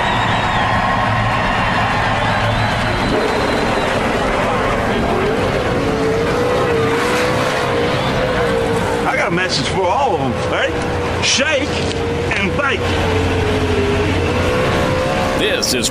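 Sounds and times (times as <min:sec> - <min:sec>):
busy crowd roar: 0:00.0 - 0:15.8
race car engine firing up and revving: 0:00.0 - 0:15.8
speech: 0:09.5 - 0:12.0, 0:15.7 - 0:15.8.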